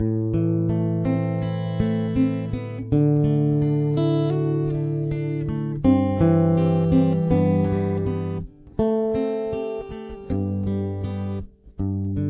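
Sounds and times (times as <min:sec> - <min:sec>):
guitar: 0:00.0 - 0:12.2.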